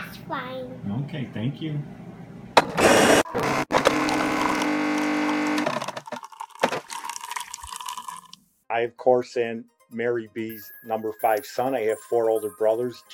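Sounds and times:
speech: 0:00.3 - 0:02.0, 0:08.7 - 0:13.1
coffee maker running: 0:02.6 - 0:08.3.

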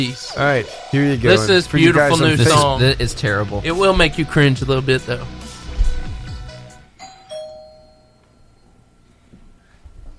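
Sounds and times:
speech: 0:00.0 - 0:05.4
two-note ding-dong doorbell chime indoors: 0:07.0 - 0:08.8.

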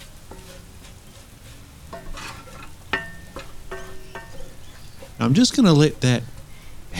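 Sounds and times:
spice mixture sizzling in a hot pot: 0:00.0 - 0:06.9
metallic clinks and scrapes from stirring the spice mixture: 0:01.9 - 0:05.2
speech: 0:05.2 - 0:06.3.

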